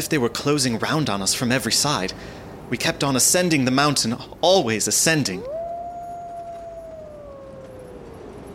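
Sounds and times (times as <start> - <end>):
speech: 0.0 - 5.6
wind-like hiss: 0.0 - 8.5
wolf howling: 5.2 - 8.5.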